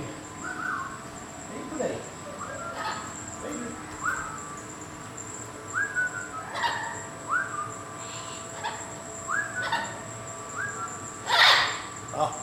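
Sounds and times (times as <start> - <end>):
faint steady hum: 0.0 - 12.4
parrots calling with whistled notes and squawks in a zoo animal house: 0.4 - 1.0, 2.3 - 4.7, 5.7 - 12.0.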